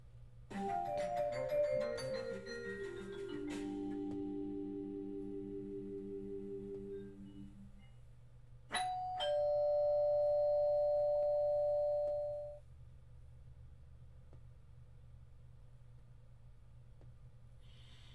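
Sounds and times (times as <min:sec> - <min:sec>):
doorbell chiming descending notes: 0:00.6 - 0:06.2, 0:08.7 - 0:12.6.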